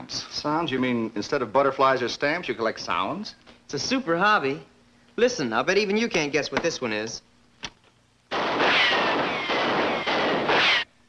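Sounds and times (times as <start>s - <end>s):
speech: 0.1s - 7.3s
loud dense burst of gunfire: 8.3s - 11.0s.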